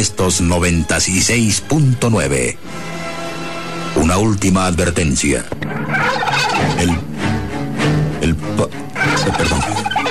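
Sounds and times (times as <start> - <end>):
speech: 0.0 - 3.2, 3.9 - 7.1, 8.2 - 10.0
turkey gobbling: 5.6 - 7.3, 8.9 - 10.0.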